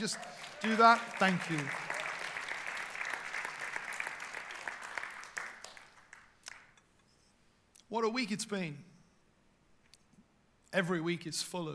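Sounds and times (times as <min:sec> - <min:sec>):
speech: 0:00.0 - 0:01.9, 0:07.9 - 0:08.9, 0:10.7 - 0:11.7
large gathering clapping and cheering: 0:00.0 - 0:06.8.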